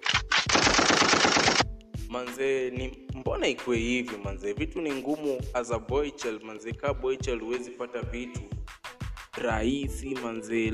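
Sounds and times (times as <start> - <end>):
fast sustained machine-gun rattle: 0.0 - 1.6
loud gunshot blasts: 0.0 - 1.6
speech: 2.4 - 8.6, 9.4 - 10.7.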